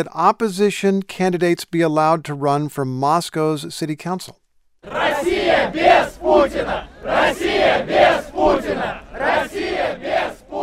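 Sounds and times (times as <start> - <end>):
speech: 0.0 - 10.4
protesters at a rally for free elections chanting a political slogan in unison: 4.8 - 10.6.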